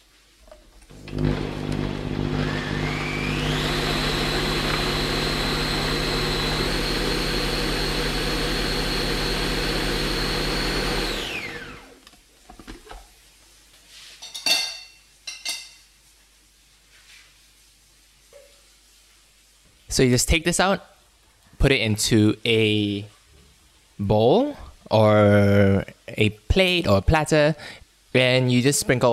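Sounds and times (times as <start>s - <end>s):
blender or food processor pureeing hummus: 0.9s - 12.0s
speech: 20.0s - 20.9s, 21.6s - 23.2s, 24.0s - 29.1s.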